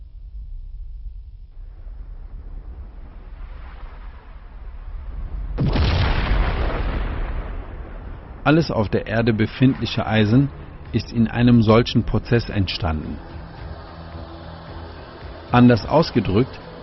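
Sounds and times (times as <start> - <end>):
explosion boom: 0.0 - 11.6
deep rumbling: 0.0 - 16.8
speech: 8.5 - 13.4, 15.5 - 16.8.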